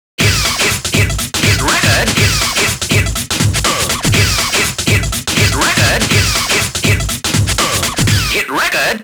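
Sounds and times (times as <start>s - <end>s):
music: 0.2s - 8.4s.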